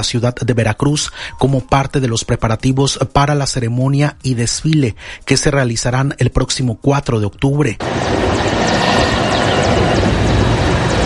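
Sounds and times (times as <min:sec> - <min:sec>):
speech: 0:00.0 - 0:09.0
helicopter rotor and engine roar passing overhead: 0:07.8 - 0:11.0.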